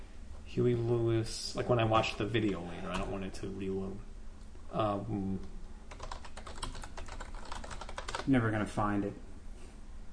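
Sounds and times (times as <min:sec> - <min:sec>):
speech: 0:00.5 - 0:04.1, 0:04.7 - 0:05.6, 0:08.2 - 0:09.2
typing on a computer keyboard: 0:05.9 - 0:08.3.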